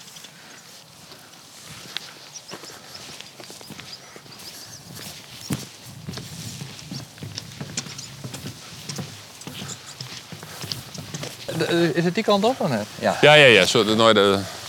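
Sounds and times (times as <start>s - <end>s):
outdoor rustle: 0.0s - 14.6s
very old horse walking with hooves clip-clopping: 0.0s - 14.6s
speech: 11.6s - 14.6s.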